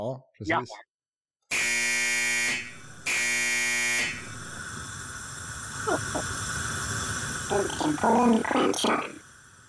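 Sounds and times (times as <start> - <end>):
speech: 0.1 - 0.9, 5.8 - 6.4, 7.5 - 9.2
harsh electronic buzzer blasts from a pressed button: 1.5 - 4.6.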